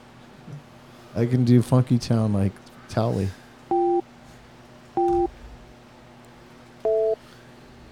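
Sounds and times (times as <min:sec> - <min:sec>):
quiet hum: 0:00.0 - 0:07.8
speech: 0:01.2 - 0:03.4
touch-tone telephone beeps as a man dials a phone number: 0:03.7 - 0:04.0, 0:05.0 - 0:05.3, 0:06.9 - 0:07.2.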